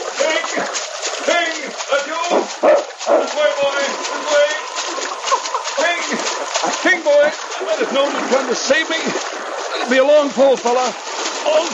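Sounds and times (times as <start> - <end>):
splashing and churning icy river water: 0.0 - 11.7
dog barking and yelping: 2.6 - 3.3
laughter: 3.2 - 10.7
speech: 7.8 - 11.7.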